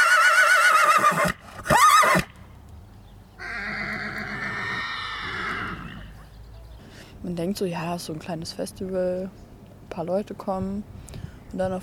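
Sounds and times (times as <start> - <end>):
horse neighing: 0.0 - 2.3, 3.4 - 6.2
speech: 7.3 - 9.4, 10.0 - 11.8.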